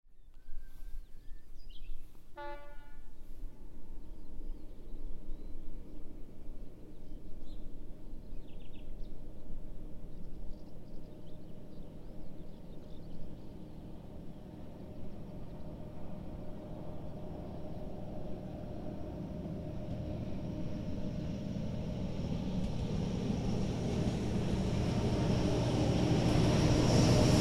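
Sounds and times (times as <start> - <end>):
train passing in Čečejovce: 2.0 - 27.3.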